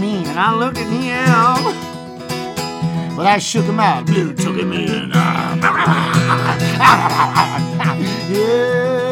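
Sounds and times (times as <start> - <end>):
speech: 0.0 - 1.9, 3.2 - 9.0
laughter: 5.3 - 8.4
dog barking: 6.7 - 7.9.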